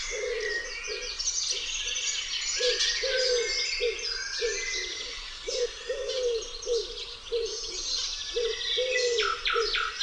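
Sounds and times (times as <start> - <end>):
chorus of small birds chirping and trilling: 0.0 - 10.0
common wood pigeon cooing: 0.1 - 1.1, 2.6 - 7.8, 8.4 - 9.8.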